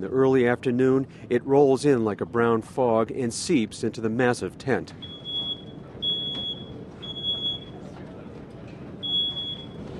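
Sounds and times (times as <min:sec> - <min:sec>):
speech: 0:00.0 - 0:05.1
tent fire alarm triggered by dust, high-pitched electronic tones: 0:05.0 - 0:07.8, 0:09.0 - 0:09.9.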